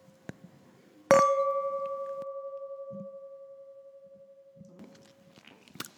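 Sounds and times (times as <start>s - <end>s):
wine glasses of Riesling clinking in a toast: 1.1s - 5.4s.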